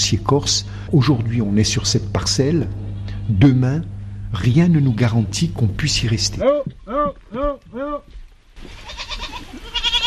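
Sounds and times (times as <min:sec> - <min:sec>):
speech: 0:00.1 - 0:09.6
murmuring: 0:02.3 - 0:08.1
goat bleating: 0:02.8 - 0:03.6, 0:06.3 - 0:10.0.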